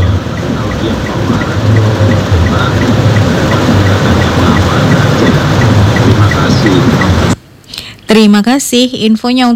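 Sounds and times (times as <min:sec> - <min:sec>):
fast-running water rushing along the street: 0:00.0 - 0:07.3
heavy rain pouring: 0:00.0 - 0:07.4
speech: 0:00.8 - 0:03.0, 0:06.6 - 0:07.1, 0:08.1 - 0:09.5.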